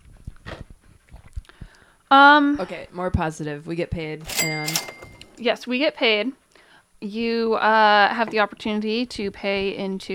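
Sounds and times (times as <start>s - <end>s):
dog mouthing its ball wetly: 0.0s - 1.7s
speech: 2.1s - 6.4s, 7.0s - 10.1s.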